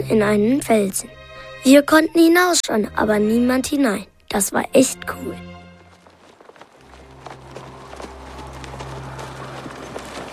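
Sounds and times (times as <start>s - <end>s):
speech: 0.0s - 5.6s
horses' hooves clip-clopping: 5.4s - 10.3s.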